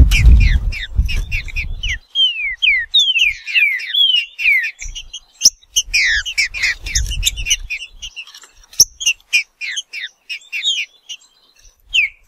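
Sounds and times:
low rumble: 0.0 - 2.0
wild green-winged saltator singing in the bush: 0.0 - 12.2.

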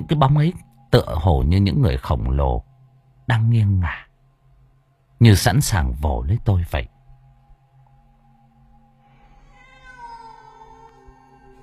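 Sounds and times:
low steady hum: 0.0 - 11.6
speech: 0.1 - 2.7, 3.3 - 4.1, 5.2 - 6.9
cat meowing: 9.1 - 11.6.

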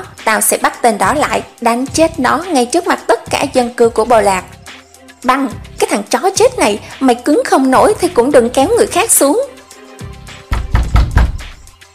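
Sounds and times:
speech: 0.2 - 4.6, 5.2 - 9.6
heavy banging on a wooden door: 10.5 - 11.6.

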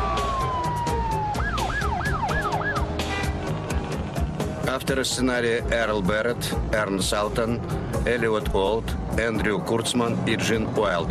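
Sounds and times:
ambulance siren: 0.0 - 3.6
traffic rumble: 0.0 - 11.0
speech: 4.7 - 11.0.

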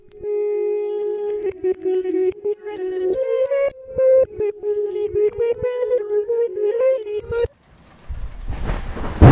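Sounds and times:
melodic tune: 0.0 - 7.5
heavy rain at sea: 7.6 - 9.3
thunder rumbling at sea: 7.8 - 9.3.

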